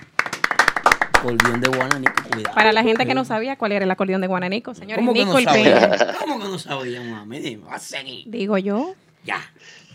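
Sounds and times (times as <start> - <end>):
quick irregular hand claps of applause: 0.0 - 3.2
speech: 1.2 - 9.8
person speaking loudly: 5.0 - 7.1
laughter: 5.4 - 6.4.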